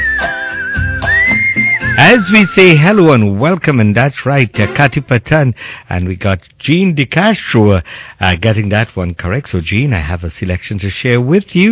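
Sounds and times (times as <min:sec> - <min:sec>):
person whistling a short tune: 0:00.0 - 0:02.8
speech: 0:02.0 - 0:11.7.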